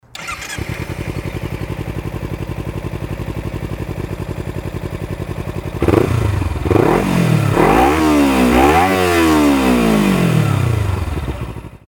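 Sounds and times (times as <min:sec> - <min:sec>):
Ninja 250 motorcycle engine: 0:00.0 - 0:11.8.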